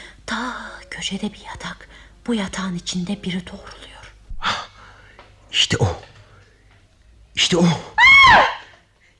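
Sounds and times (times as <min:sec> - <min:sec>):
speech: 0:00.3 - 0:03.9, 0:05.5 - 0:06.1, 0:07.4 - 0:08.5
person screaming in fright: 0:08.0 - 0:08.7.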